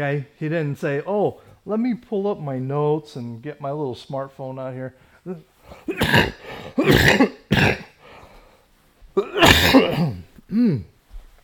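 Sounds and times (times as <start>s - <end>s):
speech: 0.0s - 7.8s
person coughing in a harsh coughing fit: 5.8s - 8.0s, 9.2s - 10.9s.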